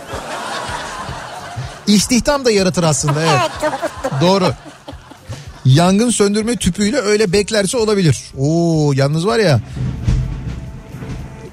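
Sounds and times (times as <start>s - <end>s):
laughter: 0.0s - 7.6s
speech: 1.9s - 4.7s, 5.6s - 9.9s
thunder rumbling: 9.6s - 11.5s.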